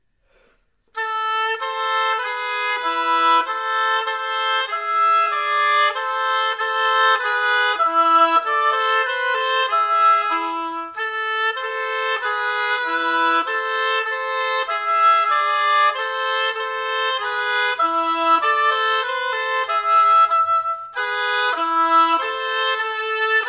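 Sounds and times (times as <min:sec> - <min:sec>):
gavotte oboe duet: 0:00.9 - 0:23.4.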